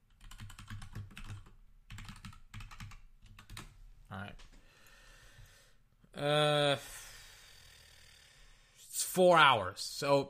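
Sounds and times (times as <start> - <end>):
typing a route search on a computer keyboard: 0.1 - 3.8
speech: 4.2 - 4.5, 6.2 - 7.0, 9.2 - 10.2.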